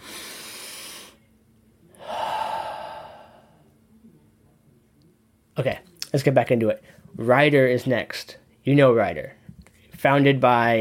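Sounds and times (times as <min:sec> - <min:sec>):
person taking a deep breath: 0:00.0 - 0:01.2, 0:02.0 - 0:03.7
speech: 0:05.6 - 0:09.4, 0:10.0 - 0:10.7.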